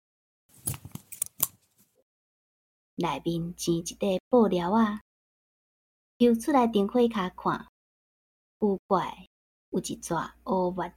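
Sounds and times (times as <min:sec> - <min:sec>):
scissors snipping through the thread of a trouser belt: 0:00.6 - 0:01.8
speech: 0:03.0 - 0:05.1, 0:06.2 - 0:07.7, 0:08.6 - 0:10.9.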